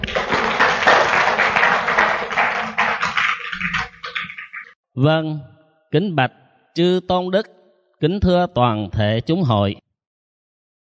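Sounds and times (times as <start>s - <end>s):
crowd applauding a nun: 0.0s - 4.6s
speech: 5.0s - 9.8s.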